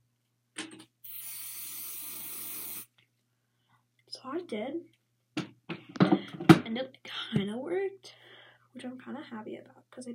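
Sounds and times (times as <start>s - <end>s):
hairspray hissing from an aerosol can onto a note card: 1.0s - 2.9s
speech: 4.2s - 5.0s, 6.7s - 8.2s, 8.8s - 10.1s.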